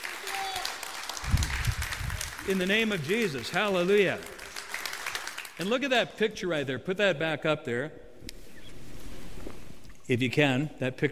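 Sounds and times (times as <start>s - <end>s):
audience clapping hands in praise: 0.0s - 5.7s
speech: 2.4s - 4.4s, 5.6s - 8.0s, 10.1s - 11.1s.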